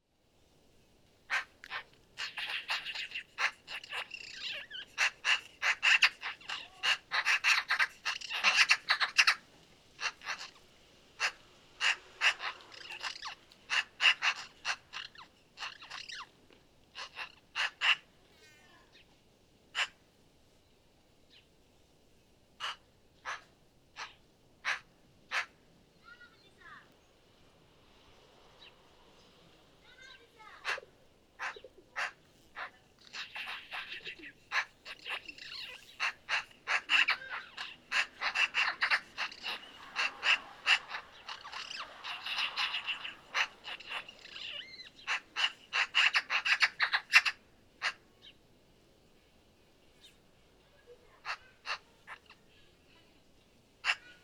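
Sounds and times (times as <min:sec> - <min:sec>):
Eurasian magpie Pica pica: 0:01.3 - 0:10.6, 0:11.2 - 0:16.3, 0:16.9 - 0:19.0, 0:19.8 - 0:20.0, 0:22.6 - 0:26.9, 0:29.9 - 0:48.4, 0:50.8 - 0:52.9, 0:53.8 - 0:54.2.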